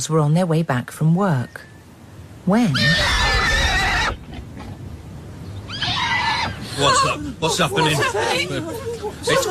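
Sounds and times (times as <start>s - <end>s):
speech: 0.0s - 1.7s, 2.4s - 3.2s, 6.8s - 9.4s
frightened horse neighing: 2.6s - 4.7s, 5.6s - 7.2s
laughter: 6.6s - 9.4s.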